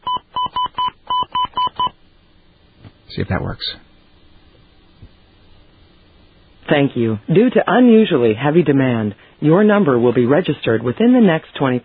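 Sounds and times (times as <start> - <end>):
telephone keypad tones dialing a phone number: 0.0 - 1.9
speech: 3.2 - 3.8, 6.7 - 11.8.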